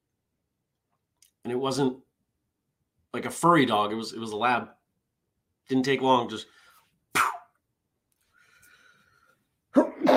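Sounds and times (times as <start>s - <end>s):
speech: 1.4s - 2.0s, 3.1s - 4.8s, 5.7s - 7.3s
person sneezing: 7.1s - 7.5s, 9.8s - 10.1s.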